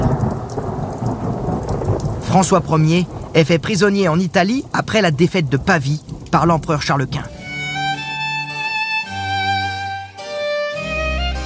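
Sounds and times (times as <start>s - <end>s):
low rolling thunder: 0.0s - 7.3s
heavy rain: 0.0s - 11.4s
speech: 2.3s - 7.4s.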